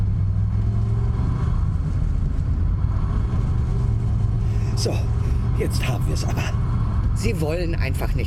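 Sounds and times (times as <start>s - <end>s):
old car engine running as it drives: 0.0s - 8.2s
speech: 4.8s - 6.6s, 7.2s - 8.2s.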